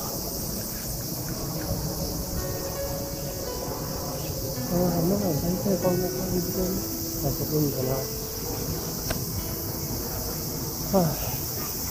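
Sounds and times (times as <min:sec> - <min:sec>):
cicadas droning in summer: 0:00.0 - 0:11.8
speech: 0:04.7 - 0:08.2, 0:10.9 - 0:11.3.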